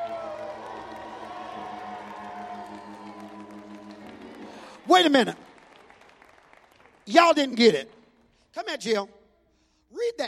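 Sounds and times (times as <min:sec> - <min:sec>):
large audience shouting and cheering: 0:00.0 - 0:05.7
organ holding steady chords: 0:00.0 - 0:05.7
speech: 0:04.9 - 0:05.5, 0:07.1 - 0:09.2, 0:09.9 - 0:10.2.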